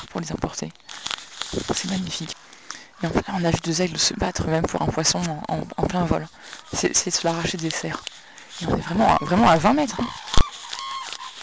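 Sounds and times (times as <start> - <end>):
speech: 0.1 - 2.4, 3.0 - 10.4
cranes giving harsh honking threat calls at eagles: 8.8 - 11.4.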